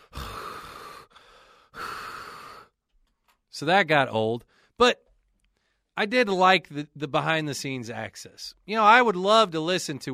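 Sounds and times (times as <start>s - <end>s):
voice imitating heavy out-of-breath breathing of winded golfers: 0.0s - 2.8s, 4.4s - 4.8s
speech: 3.6s - 5.0s, 6.0s - 10.1s.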